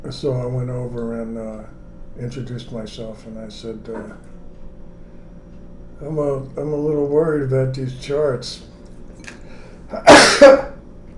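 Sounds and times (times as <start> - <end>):
speech: 0.1 - 4.4, 6.0 - 8.7, 9.9 - 10.7
sneeze: 9.9 - 10.8.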